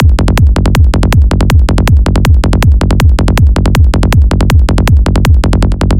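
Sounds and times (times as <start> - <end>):
psytrance neo rave full drop loop at 160 bpm: 0.0 - 5.9.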